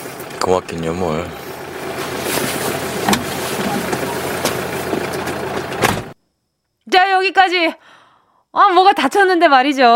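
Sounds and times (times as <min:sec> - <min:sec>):
car engine idling: 0:00.0 - 0:06.2
speech: 0:00.4 - 0:01.4, 0:07.2 - 0:09.9.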